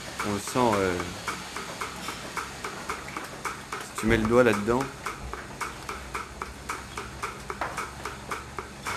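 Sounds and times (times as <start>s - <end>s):
milking machine pulsator ticking during milking of a dairy cow herd: 0.0s - 8.9s
speech: 0.2s - 1.3s, 4.0s - 5.0s.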